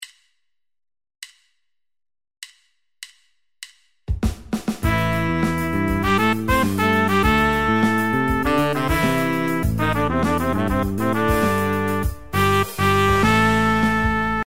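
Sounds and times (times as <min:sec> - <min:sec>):
pop horn section: 0:04.8 - 0:14.4.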